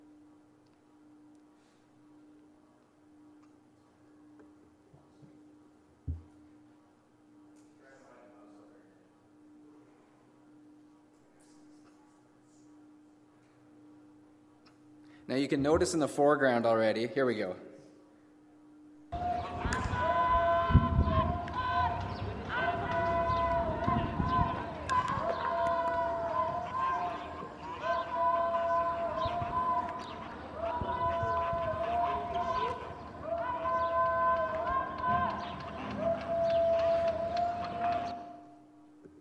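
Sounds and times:
speech: 0:15.3 - 0:17.7
crowd yelling Allahu Akbar in massed voices: 0:19.1 - 0:38.6.

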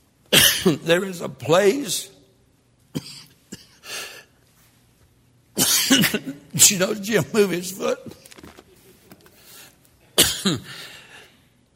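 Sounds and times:
person coughing: 0:00.3 - 0:00.8, 0:02.9 - 0:04.3, 0:05.6 - 0:06.5, 0:10.1 - 0:11.2
speech: 0:00.6 - 0:02.2, 0:06.1 - 0:08.2, 0:10.4 - 0:10.9
faint rustling and shuffling: 0:04.4 - 0:05.2, 0:08.0 - 0:10.0.

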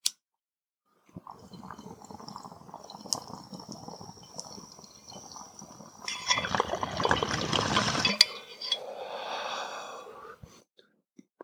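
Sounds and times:
water bubbling and gurgling in a bong during a smoking hit: 0:01.1 - 0:10.5
glassy clink: 0:06.1 - 0:06.8, 0:08.0 - 0:08.9.

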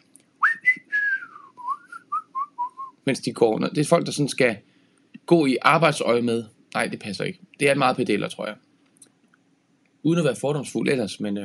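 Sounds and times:
person whistling a short tune: 0:00.4 - 0:03.0
speech: 0:03.1 - 0:04.7, 0:05.3 - 0:08.6, 0:10.0 - 0:11.4.

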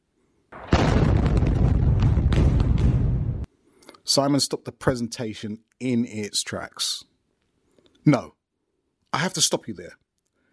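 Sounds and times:
firework explosion crackling and popping: 0:00.6 - 0:03.5
speech: 0:04.2 - 0:07.1, 0:08.0 - 0:08.4, 0:09.1 - 0:10.0.

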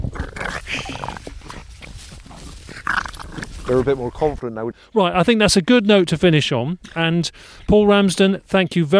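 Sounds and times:
dogs scuffling with growls, snarls and snorting grunts: 0:00.0 - 0:04.4
speech: 0:03.7 - 0:08.9.

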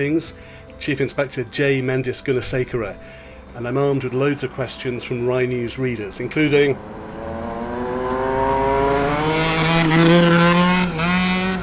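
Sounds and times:
speech: 0:00.0 - 0:07.0
loud motorbikes revving past: 0:05.0 - 0:11.6.

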